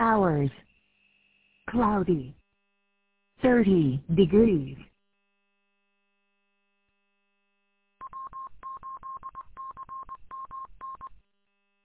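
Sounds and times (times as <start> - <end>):
speech: 0.4 - 0.7, 1.7 - 2.4, 3.4 - 4.9
Morse code identification beeps from a radio repeater: 8.0 - 11.2.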